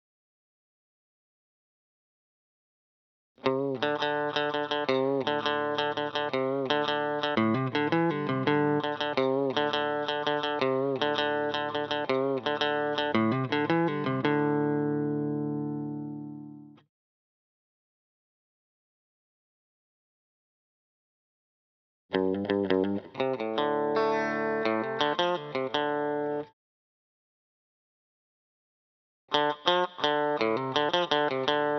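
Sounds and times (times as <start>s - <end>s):
electric guitar lead fill: 3.4s - 16.8s, 22.1s - 26.5s, 29.3s - 31.7s.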